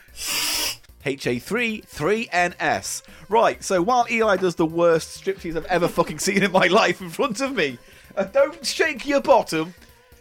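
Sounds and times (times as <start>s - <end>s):
aerosol deodorant sprayed by a man onto his armpits: 0.1s - 0.8s
speech: 1.0s - 9.8s.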